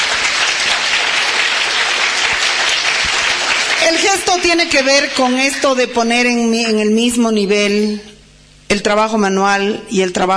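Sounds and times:
audience applause at a book presentation: 0.0 - 5.9
speech: 4.3 - 8.1, 8.7 - 10.3.

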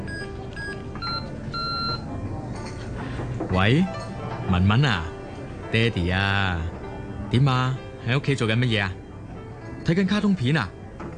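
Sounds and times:
telephone beeping as a call is placed: 0.1 - 2.1
speech: 3.5 - 5.1, 5.7 - 9.0, 9.8 - 10.8.

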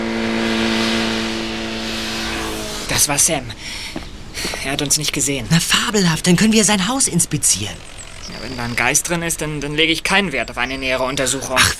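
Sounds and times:
motorcycle driving away toward town: 0.0 - 3.4, 6.3 - 10.6
speech: 3.0 - 11.7.

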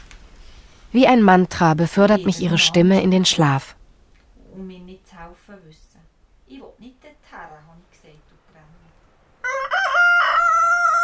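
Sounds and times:
speech: 0.9 - 3.8, 4.6 - 5.9
rooster crowing at an alpine hut in Val Gronda, Switzerland, in cold rain: 9.4 - 11.0.

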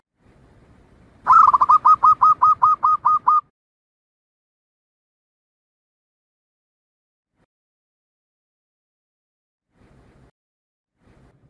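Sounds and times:
Zebra dove staccato cooing song: 1.3 - 3.5.

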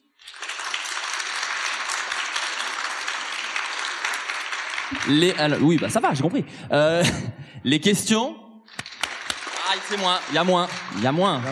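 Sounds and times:
audience applauding at a live public festival recording to cast a vote: 0.0 - 6.4, 8.7 - 11.5
speech: 4.9 - 8.4, 9.8 - 11.5.

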